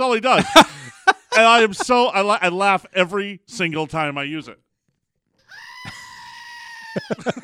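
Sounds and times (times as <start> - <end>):
speech: 0.0 - 0.8, 1.4 - 4.6, 7.0 - 7.4
laughter: 0.3 - 2.1, 5.8 - 7.4
screaming goat toy squeezed: 5.4 - 7.4.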